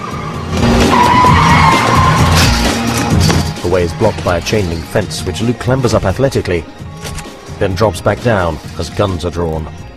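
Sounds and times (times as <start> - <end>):
loud sustained car skidding screech: 0.0 - 3.0
car tires squealing in an alley: 0.0 - 3.4
car engine roaring in an alley: 0.0 - 4.8
speech: 3.7 - 6.8, 7.6 - 9.8.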